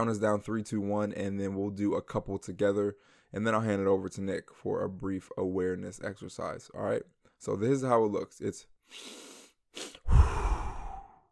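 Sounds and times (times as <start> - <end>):
speech: 0.0 - 10.5
person inhaling during a breathing exercise: 3.0 - 3.3, 8.8 - 11.3
extended breathy exhale during a breathing exercise: 8.9 - 11.3.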